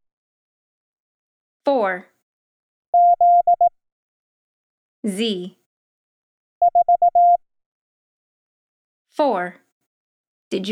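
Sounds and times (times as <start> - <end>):
speech: 1.6 - 2.1, 5.0 - 5.6, 9.2 - 9.6, 10.5 - 10.7
Morse code beeps on a steady mid-pitched tone: 3.0 - 3.7, 6.6 - 7.4.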